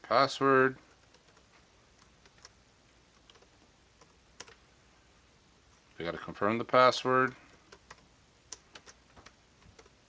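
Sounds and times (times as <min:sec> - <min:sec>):
speech: 0:00.1 - 0:00.9, 0:06.0 - 0:07.4
typing on a computer keyboard: 0:00.8 - 0:04.6, 0:07.2 - 0:10.0.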